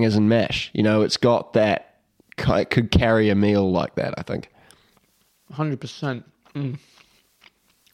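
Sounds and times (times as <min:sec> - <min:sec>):
speech: 0:00.0 - 0:04.5, 0:05.5 - 0:06.9
person chewing a crunchy hors d'oeuvre: 0:06.4 - 0:07.9.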